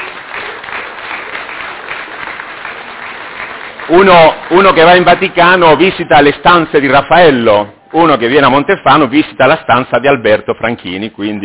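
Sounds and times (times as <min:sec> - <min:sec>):
crowd clapping in applause for an artist at an event: 0:00.0 - 0:06.6
speech: 0:03.9 - 0:11.4.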